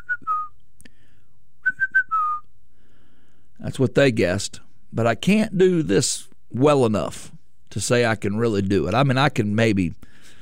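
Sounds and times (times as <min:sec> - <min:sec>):
person whistling: 0:00.0 - 0:00.6, 0:01.6 - 0:02.5
speech: 0:03.6 - 0:10.0.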